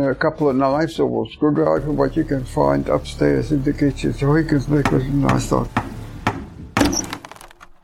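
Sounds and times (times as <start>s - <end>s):
speech: 0.0s - 5.9s
hammer knocking a hole into a wooden barrel of French cognac: 4.8s - 7.5s
debris rattling and crackling: 6.8s - 7.8s.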